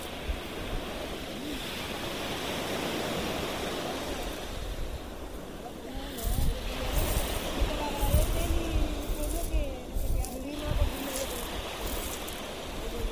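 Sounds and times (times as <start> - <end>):
surf on a beach: 0.0 - 13.1.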